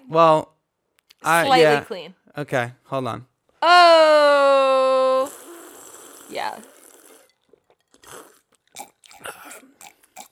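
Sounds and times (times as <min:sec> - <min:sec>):
speech: 0:00.1 - 0:00.5, 0:01.2 - 0:05.4, 0:06.3 - 0:06.7
gulping: 0:05.2 - 0:10.3
close-mic wet chewing and crunching with smacking bites: 0:07.2 - 0:10.3.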